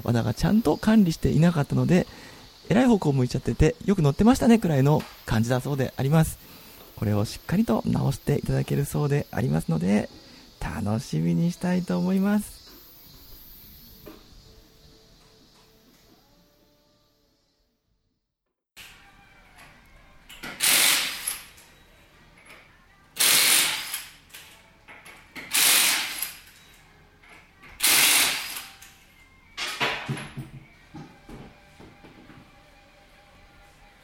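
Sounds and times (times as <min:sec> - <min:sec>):
speech: 0:00.0 - 0:12.6
power tool removing lug bolts from a car tyre at a repair shop: 0:20.3 - 0:21.6, 0:23.2 - 0:24.1, 0:25.4 - 0:26.5, 0:27.8 - 0:28.8.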